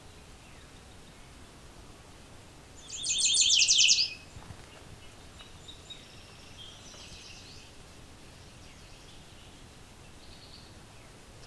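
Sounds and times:
yellow warbler singing: 2.8 - 4.2.

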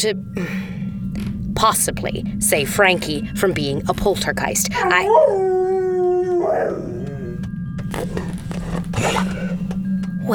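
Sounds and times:
speech: 0.0 - 5.5, 7.9 - 9.4
low rumble: 0.0 - 10.3
dog howling: 4.8 - 9.6
scraping and rustling: 7.8 - 9.8.

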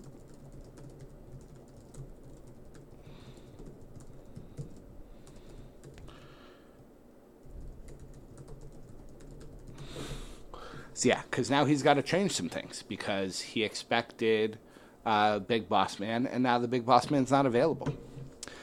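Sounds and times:
rapid typing on a computer keyboard: 0.0 - 6.2, 7.5 - 9.9
speech: 11.0 - 18.0.

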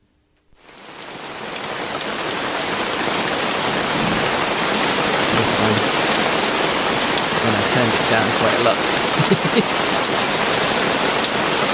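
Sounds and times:
rain falling on a tent: 0.5 - 11.7
laughter: 5.3 - 6.2, 7.3 - 10.1
speech: 8.1 - 10.2.

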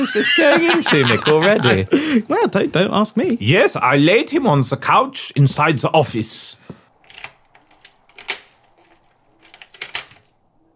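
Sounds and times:
laughter: 0.0 - 2.5
speech: 0.0 - 6.7
door lock clicking as it is unlocked: 7.0 - 10.5
keys jangling while unlocking a door: 7.0 - 10.7.

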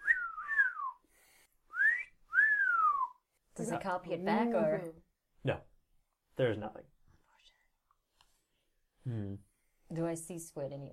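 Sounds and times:
person doing a wolf whistle: 0.0 - 1.0, 1.7 - 3.2
speech: 3.6 - 5.7, 6.4 - 7.0, 9.0 - 10.9.

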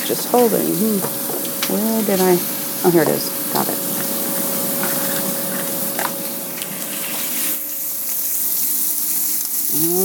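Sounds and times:
ham sizzling in a frying pan: 0.0 - 10.0
speech: 0.1 - 3.8, 9.7 - 10.0.

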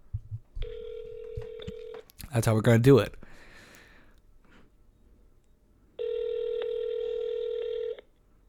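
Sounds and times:
faint noise: 0.0 - 8.4
phone call ringing tone: 0.6 - 2.1, 6.0 - 8.1
speech: 2.3 - 3.2.

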